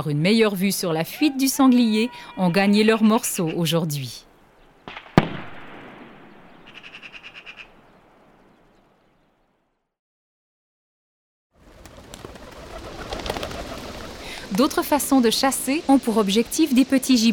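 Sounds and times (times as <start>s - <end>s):
speech: 0.0s - 4.3s, 14.6s - 17.3s
flock of wood pigeons flapping wings: 11.6s - 17.3s
wood pigeon wing claps on take-off: 11.7s - 14.2s.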